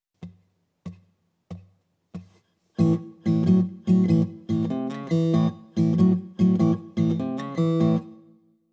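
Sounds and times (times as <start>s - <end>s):
blues rock guitar in open tuning: 2.8s - 8.2s.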